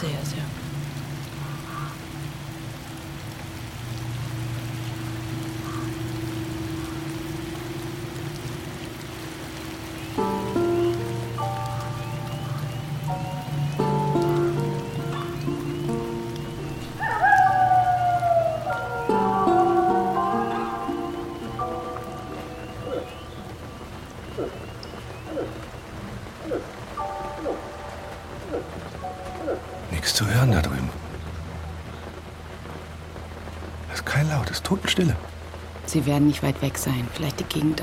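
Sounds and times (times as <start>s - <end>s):
steady rain pattering on a surface: 0.0s - 37.8s
speech: 35.0s - 35.3s, 35.9s - 37.8s.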